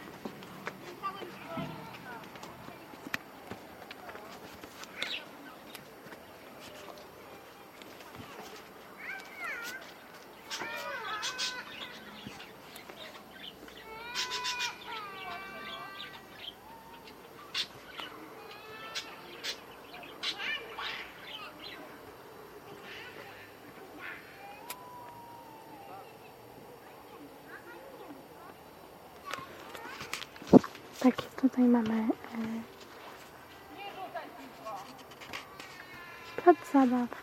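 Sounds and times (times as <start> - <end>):
steady hiss: 0.0 - 37.2
pet parrots squawking and screeching: 10.5 - 12.3, 13.9 - 17.8, 18.8 - 21.4
speech: 31.0 - 32.5, 36.7 - 37.2.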